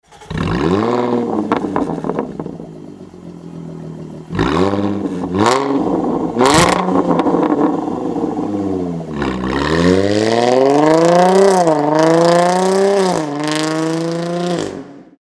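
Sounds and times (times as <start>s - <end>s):
Jaguar F-Type S exhaust with open valves: 0.2s - 15.1s.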